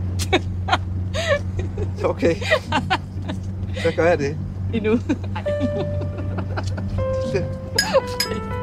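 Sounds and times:
people giggling: 0:00.2 - 0:04.0, 0:05.0 - 0:07.0
speech: 0:00.3 - 0:00.8, 0:02.0 - 0:03.0, 0:03.8 - 0:06.0, 0:06.7 - 0:08.5
glasses clinking: 0:07.8 - 0:08.5.

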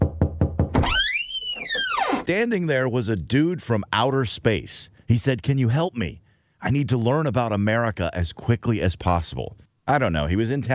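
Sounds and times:
firm knocking on a front door: 0:00.0 - 0:00.9
speech: 0:02.3 - 0:10.7.

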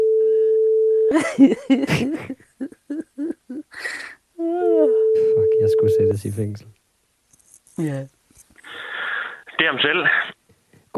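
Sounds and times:
telephone ringing tone as a call goes out during a radio broadcast: 0:00.0 - 0:01.1, 0:04.7 - 0:06.1
speech: 0:01.1 - 0:02.4, 0:05.9 - 0:06.8, 0:07.8 - 0:08.2, 0:09.6 - 0:10.1
people bursting into rhythmic laughter: 0:01.1 - 0:03.7.

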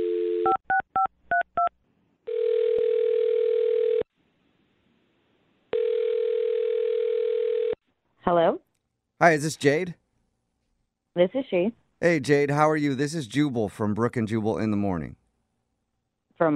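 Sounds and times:
long steady telephone ringback tones: 0:00.0 - 0:00.6, 0:02.3 - 0:04.0, 0:05.7 - 0:07.8
speech: 0:08.3 - 0:08.6, 0:09.2 - 0:10.0, 0:11.2 - 0:15.2, 0:16.4 - 0:16.5.

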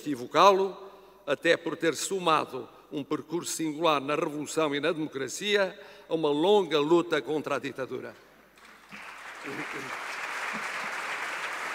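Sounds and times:
speech: 0:00.0 - 0:08.3, 0:08.9 - 0:10.6
large crowd of parliament members applauding in a big hall: 0:08.6 - 0:11.7.

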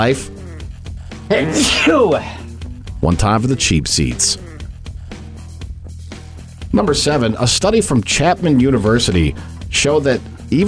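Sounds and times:
speech: 0:00.0 - 0:00.4, 0:01.3 - 0:02.4, 0:03.0 - 0:04.5, 0:06.8 - 0:10.6
loud sneeze: 0:01.3 - 0:02.5.

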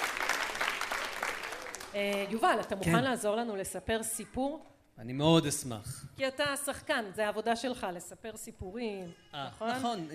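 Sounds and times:
small group applauding: 0:00.0 - 0:03.0
speech: 0:02.0 - 0:10.1.

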